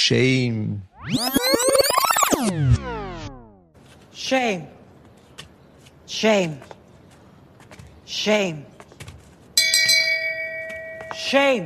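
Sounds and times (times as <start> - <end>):
speech: 0.0 - 3.0, 4.2 - 4.8, 6.1 - 6.8, 8.1 - 8.7, 11.2 - 11.6
hand bell ringing: 9.6 - 11.6.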